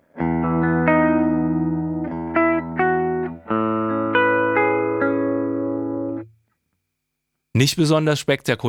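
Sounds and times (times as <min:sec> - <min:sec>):
warm clean electric guitar chords through a profiled Leslie rotating speaker cabinet amp: 0:00.0 - 0:06.4
speech: 0:07.6 - 0:08.6.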